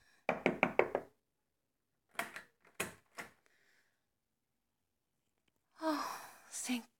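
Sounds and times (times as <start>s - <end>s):
knocking on the door of a house: 0.3s - 1.1s
speech: 6.7s - 6.9s.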